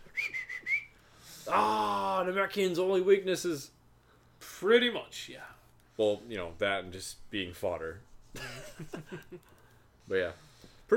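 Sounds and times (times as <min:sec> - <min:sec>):
whistling a tune: 0:00.0 - 0:01.0
speech: 0:01.5 - 0:03.8, 0:04.6 - 0:10.9.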